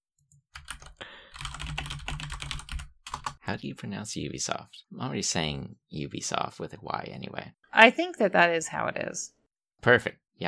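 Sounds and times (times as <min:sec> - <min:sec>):
rapid clacking of a clacky mechanical keyboard: 0:00.6 - 0:03.4
speech: 0:03.5 - 0:10.4.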